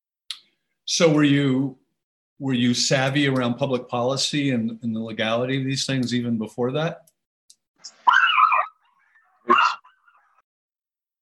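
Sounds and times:
speech: 0.9 - 1.8, 2.4 - 7.1
dog drawn-out whiny yelp: 8.0 - 8.8, 9.5 - 10.2
dogs barking: 8.0 - 8.8, 9.4 - 10.4.

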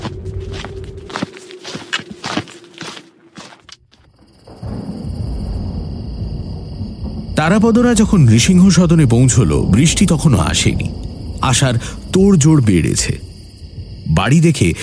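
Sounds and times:
fast footsteps of people hurrying along: 0.0 - 4.1
speech: 7.4 - 13.3, 14.1 - 14.8.

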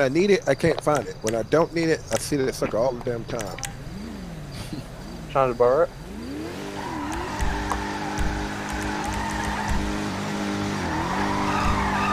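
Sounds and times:
speech: 0.0 - 3.8, 4.7 - 6.0
video game Charger car engine droning while drifting: 0.8 - 12.1
video game Charger car tire squeal while drifting: 3.6 - 12.1.

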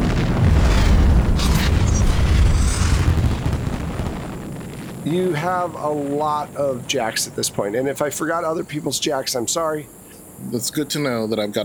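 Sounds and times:
huge deep explosion sound effect: 0.0 - 9.1
crackling debris bursts: 0.0 - 11.6
speech: 5.1 - 11.6.

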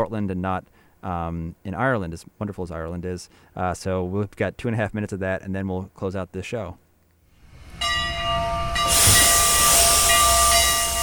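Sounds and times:
speech: 0.0 - 6.8
narrow gauge steam locomotive being fired up hissing in Portland Maine: 7.4 - 11.0
ringing metallic tone: 7.5 - 11.0.

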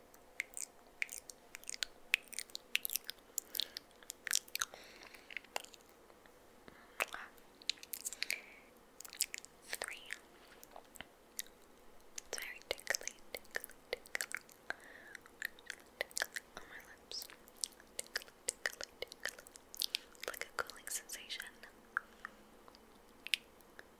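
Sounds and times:
wet mouth clicks, smacks and sticky lip pops: 0.1 - 5.9, 9.0 - 16.5, 17.2 - 23.9
soft breaths: 3.1 - 8.8, 9.6 - 10.9, 14.6 - 15.4, 18.7 - 23.0.

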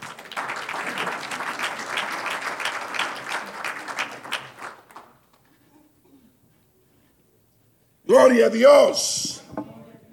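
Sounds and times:
large audience applauding during a church sermon: 0.0 - 5.4
speech: 8.1 - 9.3.

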